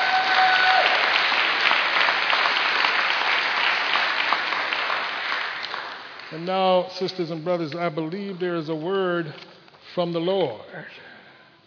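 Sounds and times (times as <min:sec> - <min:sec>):
church congregation applause during a worship service: 0:00.0 - 0:06.8
speech: 0:06.3 - 0:11.0.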